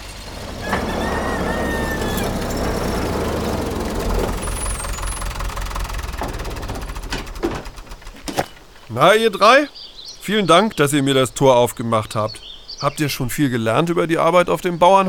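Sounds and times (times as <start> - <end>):
tractor engine rumbling while driving out onto a farm field: 0.0 - 9.2
speech: 9.0 - 15.0.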